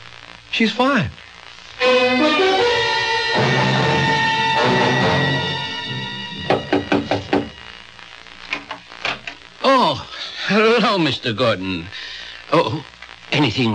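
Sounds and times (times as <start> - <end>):
speech: 0.6 - 1.2, 1.8 - 2.5, 10.5 - 13.7
orchestral music: 1.8 - 7.4
firm knocks on a door: 6.4 - 7.6.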